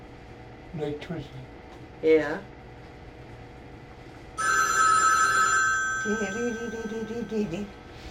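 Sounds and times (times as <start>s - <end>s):
speech: 0.7s - 2.6s, 6.0s - 8.0s
telephone ringing with electronic trill: 4.4s - 7.6s.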